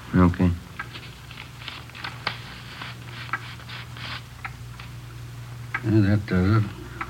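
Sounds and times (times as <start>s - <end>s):
low steady hum: 0.0s - 7.0s
speech: 0.1s - 0.7s, 5.9s - 6.8s
folded paper note opened by fingernail, crinkling: 0.9s - 4.3s.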